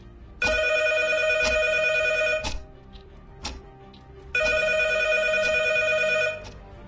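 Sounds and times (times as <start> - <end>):
telephone ringing: 0.4 - 2.5, 4.4 - 6.5.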